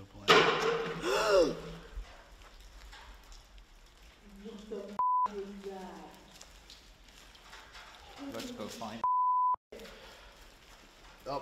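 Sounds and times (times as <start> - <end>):
person gasping out loud: 1.0 - 1.9
brief electronic beep: 5.0 - 5.3, 9.0 - 9.6.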